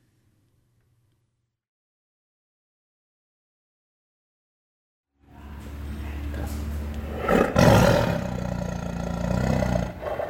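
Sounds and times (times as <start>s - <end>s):
tiger roaring: 7.0s - 10.2s.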